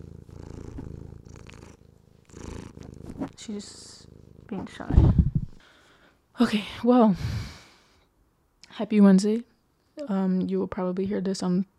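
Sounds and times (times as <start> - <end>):
female cat purring softly: 0.0 - 5.6
speech: 3.3 - 5.2, 6.4 - 7.6, 8.8 - 9.5, 10.1 - 11.7.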